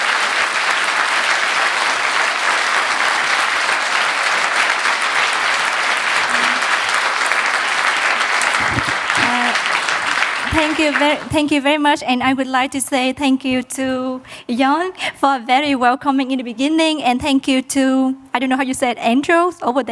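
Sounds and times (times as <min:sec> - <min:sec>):
audience applauding after a question session: 0:00.0 - 0:11.4
speech: 0:10.6 - 0:19.8.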